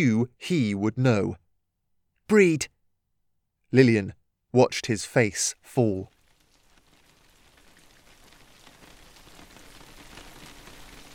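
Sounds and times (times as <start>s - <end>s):
speech: 0.0s - 1.4s, 2.3s - 2.8s, 3.7s - 6.2s
rain with large droplets hitting window glass panes: 6.0s - 11.1s.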